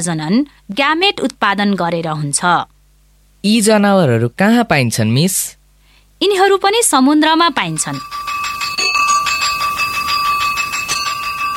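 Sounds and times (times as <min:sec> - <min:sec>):
speech: 0:00.0 - 0:02.7, 0:03.4 - 0:05.6, 0:06.2 - 0:08.4
school bell ringing at end of class period: 0:07.3 - 0:11.5.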